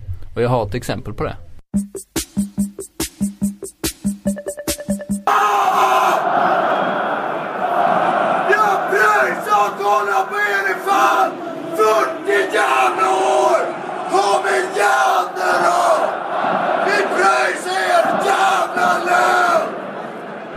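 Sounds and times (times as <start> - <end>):
speech: 0.4 - 2.1
rhythmic clapping or drum-like beats: 1.8 - 5.2
man yelling angrily from stadium stands: 5.3 - 6.2, 8.5 - 15.2
dense roaring crowd of spectators at football match: 5.3 - 20.5.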